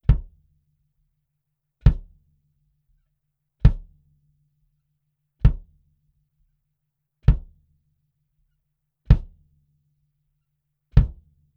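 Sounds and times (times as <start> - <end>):
kick drum D112 front: 0.0 - 0.5, 1.8 - 2.3, 3.6 - 4.0, 5.4 - 5.8, 7.2 - 7.6, 9.1 - 9.5, 10.9 - 11.4.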